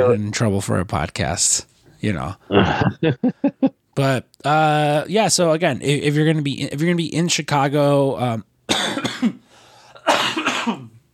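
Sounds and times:
speech: 0.0 - 9.4
person coughing: 2.5 - 3.0, 8.7 - 11.0.

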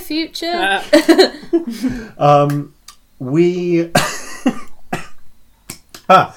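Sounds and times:
speech: 0.1 - 4.6, 6.1 - 6.3
person breathing: 1.7 - 2.2
person coughing: 4.0 - 5.2.

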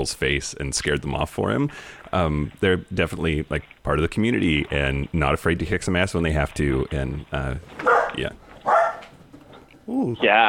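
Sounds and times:
speech: 0.0 - 8.4, 9.9 - 10.4
dogs barking at the door: 7.8 - 9.2.

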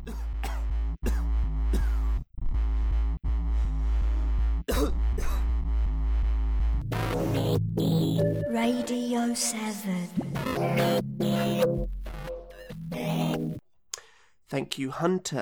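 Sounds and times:
hacking coughs chopped into an electronic dance track: 0.0 - 2.2, 4.7 - 5.5
heavily distorted electronic dance beat with a booming low end: 2.5 - 8.9, 10.2 - 13.6
speech: 8.2 - 11.9, 14.5 - 15.3.

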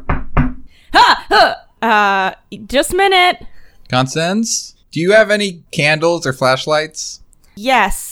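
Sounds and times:
firm hollow knocks on a door: 0.0 - 0.7
speech: 0.9 - 8.1.

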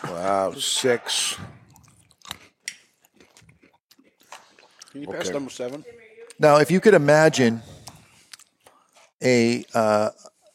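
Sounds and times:
speech: 0.1 - 1.6, 5.0 - 7.7, 9.2 - 10.3
wet chewing: 1.6 - 6.4, 7.7 - 9.2
sharp crunchy bites: 1.7 - 3.8
lip smacks: 1.7 - 5.0, 7.8 - 9.0.

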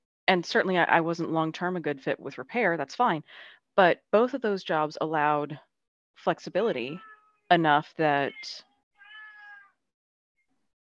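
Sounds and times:
speech: 0.3 - 8.7
cat meowing: 7.0 - 7.3, 9.0 - 9.8.

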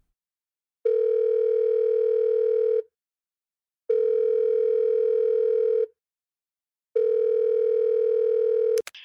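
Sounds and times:
telephone ringback tone while placing a call: 0.9 - 2.8, 3.9 - 5.9, 7.0 - 8.8.

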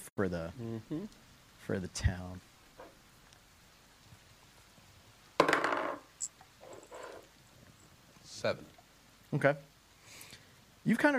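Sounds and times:
speech: 0.2 - 2.5, 8.4 - 9.7, 10.8 - 11.1
dice rolling across a table during a tabletop roleplaying game: 5.4 - 7.2.

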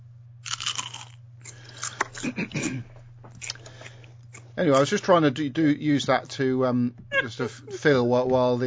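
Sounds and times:
low steady hum: 0.0 - 8.6
crunching from a bag of crisps: 0.4 - 1.2
speech: 2.2 - 3.0, 4.6 - 8.6.

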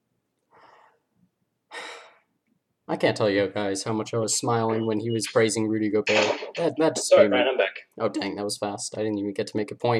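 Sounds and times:
deep breath: 0.5 - 1.1, 1.7 - 2.3
speech: 2.9 - 9.9.

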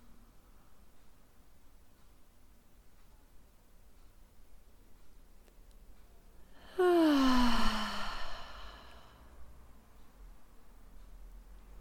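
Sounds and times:
deep exhaled breath during a grounding breathing practice: 6.6 - 9.3.

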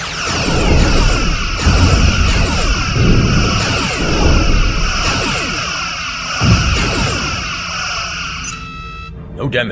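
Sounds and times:
sci-fi energy-beam blasts: 0.0 - 8.4
bright pulsing zaps: 0.0 - 8.5
booming explosive shots: 0.2 - 7.7
low rumbling roar: 0.4 - 6.6
speech: 9.4 - 9.7.

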